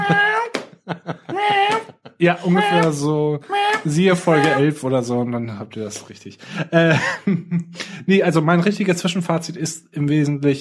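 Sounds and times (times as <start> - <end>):
voice imitating a meowing cat noise box toy: 0.0 - 0.5, 1.3 - 4.7
laughter: 0.0 - 4.7, 6.4 - 7.7
speech: 2.2 - 10.5.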